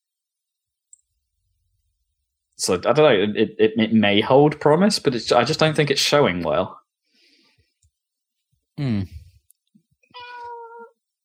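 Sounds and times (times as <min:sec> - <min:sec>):
speech: 0:02.6 - 0:06.8, 0:08.8 - 0:09.2
cat meowing: 0:10.2 - 0:11.0.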